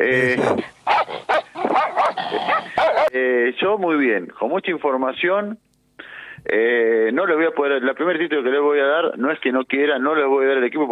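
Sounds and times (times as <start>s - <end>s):
speech: 0.0s - 0.8s, 3.5s - 5.7s, 6.5s - 10.9s
Doberman dogs barking: 0.5s - 3.2s.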